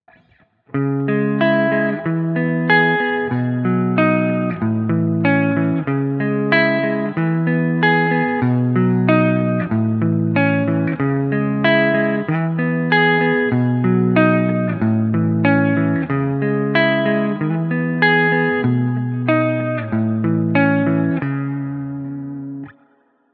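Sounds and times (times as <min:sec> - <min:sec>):
clean electric guitar: 0:00.0 - 0:23.3.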